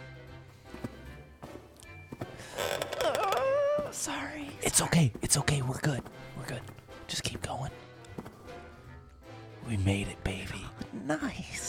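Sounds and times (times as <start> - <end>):
wooden stair step creaking with a wavering groan: 2.2 - 4.1
speech: 4.0 - 7.8, 9.7 - 11.6.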